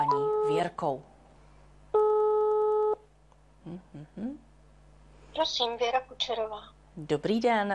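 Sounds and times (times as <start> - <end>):
telephone ringback tone while a call is dialed: 0.0 - 0.6, 2.0 - 3.0
speech: 0.5 - 1.1, 3.6 - 4.5, 5.4 - 7.7.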